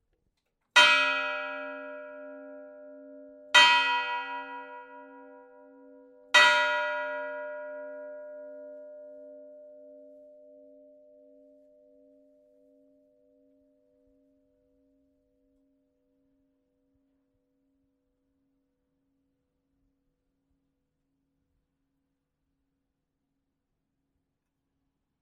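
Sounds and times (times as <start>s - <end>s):
church bells striking: 0.8s - 10.7s.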